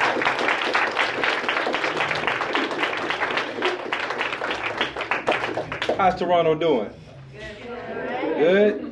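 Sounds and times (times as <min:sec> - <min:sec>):
audience applause: 0:00.0 - 0:06.2
speech: 0:06.0 - 0:07.4, 0:08.4 - 0:08.8
murmur of voices: 0:06.7 - 0:08.9.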